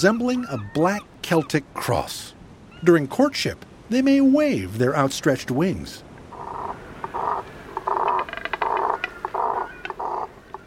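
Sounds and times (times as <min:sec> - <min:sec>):
Double-crested cormorants giving guttural grunting croaks in a nesting colony: 0:00.0 - 0:01.8, 0:06.3 - 0:10.6
speech: 0:00.0 - 0:06.1
faint clicks: 0:07.0 - 0:10.6.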